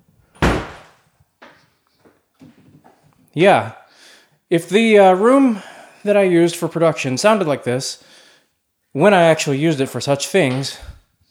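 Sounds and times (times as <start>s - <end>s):
door shutting thud: 0.4s - 1.0s
speech: 3.4s - 3.8s, 4.5s - 8.2s, 9.0s - 10.9s.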